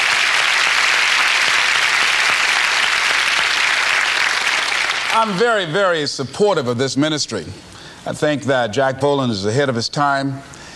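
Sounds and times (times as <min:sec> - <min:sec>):
sizable audience applauding: 0:00.0 - 0:05.6
speech: 0:05.2 - 0:10.6.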